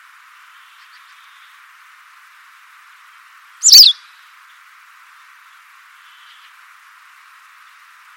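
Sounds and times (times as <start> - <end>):
faint hiss: 0.0 - 8.1
White wagtail double-note chip call: 3.6 - 3.9.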